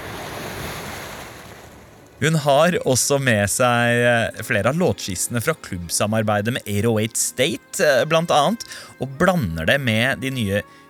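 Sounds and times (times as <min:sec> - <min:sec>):
ocean waves breaking on a beach: 0:00.0 - 0:02.2
speech: 0:02.2 - 0:10.8.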